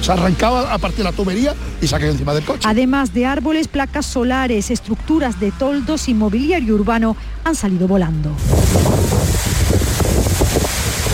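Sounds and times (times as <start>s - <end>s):
speech: 0.0s - 9.1s
strong storm wind blowing at gale force: 8.4s - 11.1s.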